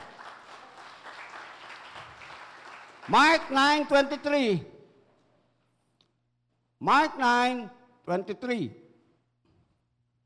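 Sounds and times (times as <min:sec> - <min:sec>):
applause from a church congregation: 0:00.0 - 0:03.9
speech: 0:03.1 - 0:04.7, 0:06.8 - 0:08.8.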